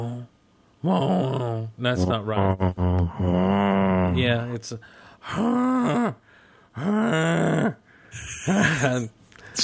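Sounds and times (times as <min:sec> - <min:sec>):
speech: 0:00.8 - 0:06.2, 0:06.8 - 0:09.6
voice imitating the wheezing groaning sound of a time machine: 0:00.9 - 0:04.2, 0:06.8 - 0:08.4.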